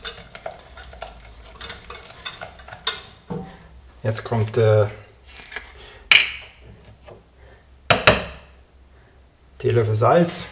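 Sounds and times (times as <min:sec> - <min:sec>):
stirring nutritional yeast flakes into a pot off the heat: 0:00.0 - 0:03.6
speech: 0:04.0 - 0:05.0, 0:09.6 - 0:10.5.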